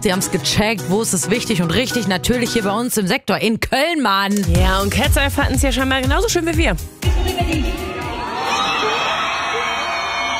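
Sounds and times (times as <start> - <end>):
speech: 0.0 - 7.9
big concert crowd of fans screaming and cheering in the Köln Arena: 7.0 - 10.3.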